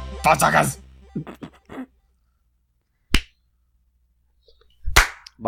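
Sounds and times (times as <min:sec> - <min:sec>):
speech: 0:00.3 - 0:01.4
hand clap: 0:05.0 - 0:05.3.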